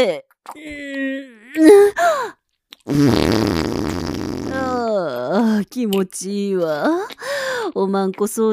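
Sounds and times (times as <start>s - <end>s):
speech: 0.0s - 3.8s, 4.6s - 8.5s
loud farts: 2.9s - 4.8s.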